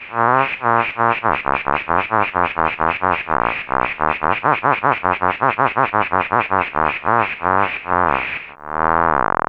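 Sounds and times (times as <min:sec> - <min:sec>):
laughing on a synthesizer: 0:00.1 - 0:08.9.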